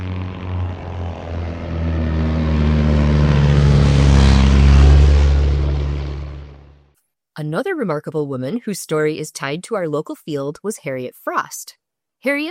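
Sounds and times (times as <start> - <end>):
propeller airplane droning overhead: 0.0 - 6.9
speech: 7.4 - 12.4.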